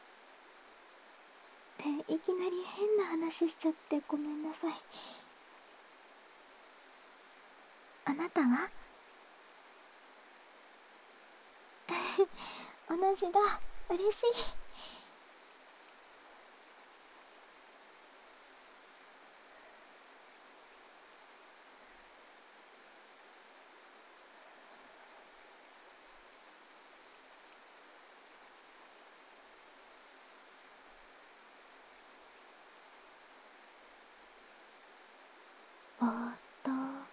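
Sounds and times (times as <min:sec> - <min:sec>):
steady rain falling: 0:00.0 - 0:37.1
speech: 0:01.8 - 0:05.2, 0:08.1 - 0:08.8, 0:12.2 - 0:14.6.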